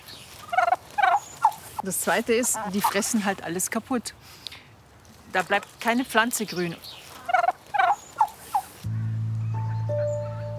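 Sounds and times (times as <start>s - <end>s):
turkeys gobbling: 0.4s - 3.2s, 7.0s - 8.8s
speech: 1.8s - 4.4s, 5.3s - 7.0s
steady low droning hum: 8.9s - 10.5s.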